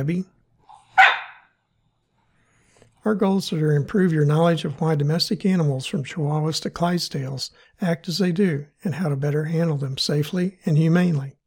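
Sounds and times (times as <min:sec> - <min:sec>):
speech: 0:00.0 - 0:00.4, 0:03.0 - 0:11.4
cattle dog barking: 0:00.7 - 0:01.5.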